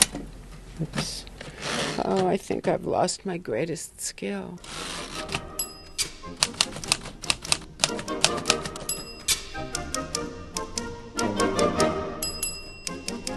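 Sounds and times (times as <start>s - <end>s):
speech: 0.8s - 1.3s, 2.0s - 5.0s
bright typewriter carriage-return bell dinging: 4.7s - 7.0s, 8.3s - 9.5s, 12.2s - 13.2s
vintage typewriter keys clacking: 5.0s - 9.5s
lively music: 5.0s - 13.3s.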